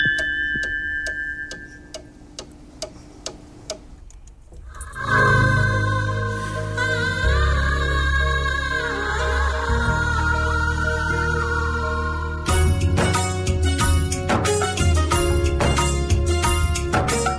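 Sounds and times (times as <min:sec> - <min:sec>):
radio studio clock ticking for an on-air time check: 0:00.0 - 0:04.3
music: 0:04.9 - 0:17.3.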